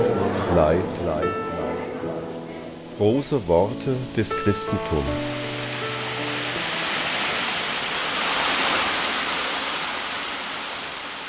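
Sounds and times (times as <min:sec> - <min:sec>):
speech: 0:00.5 - 0:01.5, 0:03.0 - 0:05.4
powerful waterfall plunging from a great height onto rocks: 0:02.8 - 0:11.2.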